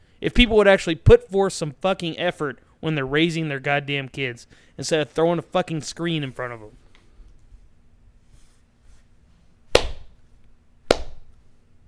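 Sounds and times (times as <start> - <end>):
speech: 0.2 - 6.8
slow sharp hand claps: 9.8 - 10.1, 10.9 - 11.3.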